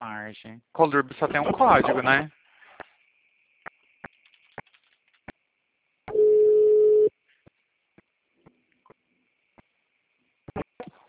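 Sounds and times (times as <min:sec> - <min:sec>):
speech: 0:00.3 - 0:02.4
faint clicks: 0:03.6 - 0:05.4
phone tone after a dropped call: 0:06.1 - 0:07.1.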